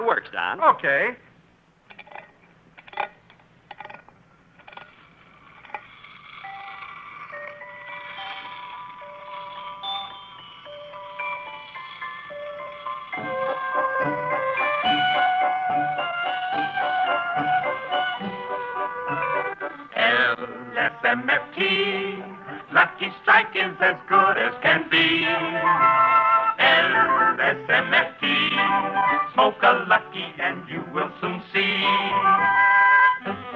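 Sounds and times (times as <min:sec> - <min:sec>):
speech: 0:00.1 - 0:01.3
wind-up toy merry-go-round clicks: 0:01.9 - 0:18.0
wind-up toy merry-go-round playing a music-box-like melody: 0:04.6 - 0:33.4.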